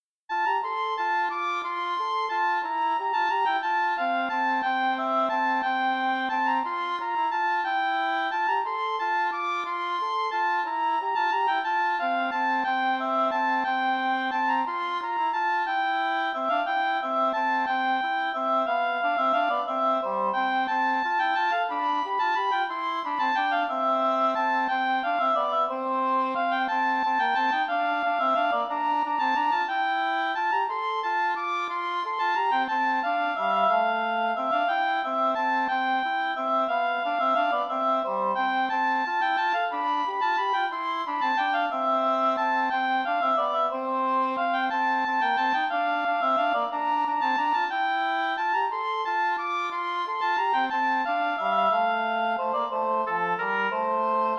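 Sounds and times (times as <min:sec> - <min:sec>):
English horn playing a passepied: 0:00.3 - 0:54.3
oboe playing a passepied: 0:00.3 - 0:54.3.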